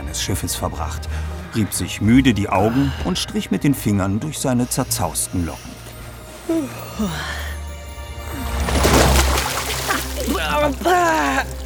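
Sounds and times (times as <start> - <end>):
speech: 0.1 - 5.8, 6.5 - 7.5, 10.3 - 11.6
splash of seawater thrown into a man's face on a ship's deck: 8.2 - 11.6.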